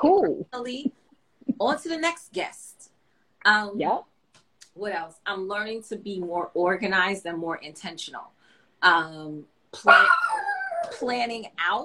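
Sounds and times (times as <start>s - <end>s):
speech: 0.0s - 1.0s, 1.6s - 2.8s, 3.4s - 4.1s, 4.8s - 11.8s
dog whining: 9.9s - 11.0s.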